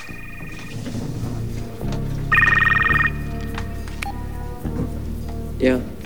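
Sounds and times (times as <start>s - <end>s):
mobile phone ringing in a drawer of an overturned table: 0.0s - 4.3s
scattered clicks of room noise: 0.0s - 4.6s
steady low rumble of room noise: 0.0s - 6.0s.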